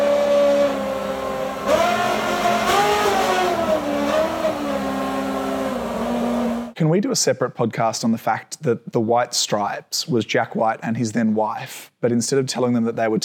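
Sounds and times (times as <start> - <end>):
Red Bull RB7 Formula One car engine revving a song's melody: 0.0 - 6.8
speech: 7.0 - 13.2.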